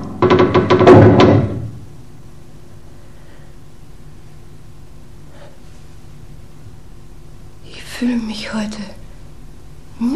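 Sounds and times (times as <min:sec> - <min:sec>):
wooden door pushed shut: 0:00.0 - 0:01.8
speech: 0:08.0 - 0:09.0.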